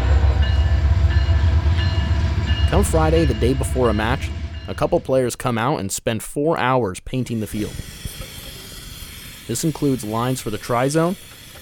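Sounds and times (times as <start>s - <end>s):
train rumbling past on tracks beside a riverbank sports field: 0.0s - 5.5s
speech: 2.7s - 8.0s, 9.5s - 11.3s.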